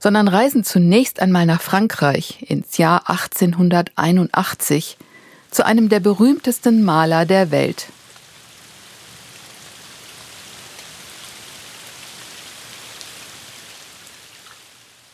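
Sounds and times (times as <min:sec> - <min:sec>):
speech: 0:00.0 - 0:08.0
heavy rain pouring by the flooded Seine in France: 0:05.0 - 0:15.1.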